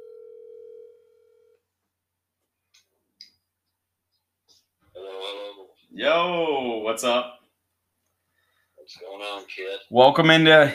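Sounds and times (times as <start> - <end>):
steady telephone dial tone: 0.0 - 1.6
speech: 6.0 - 7.4, 9.2 - 10.7.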